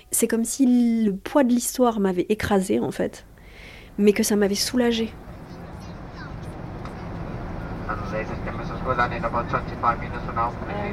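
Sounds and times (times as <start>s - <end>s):
speech: 0.1s - 3.3s, 4.0s - 5.3s, 8.9s - 10.9s
steady broadband airplane cabin engine drone: 3.4s - 10.9s.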